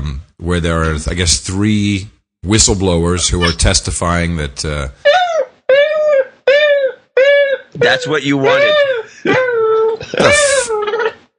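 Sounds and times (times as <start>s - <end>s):
speech: 0.2s - 5.2s, 7.8s - 9.4s, 10.1s - 10.5s
basset hound whining and crying: 3.4s - 3.6s, 5.0s - 11.2s.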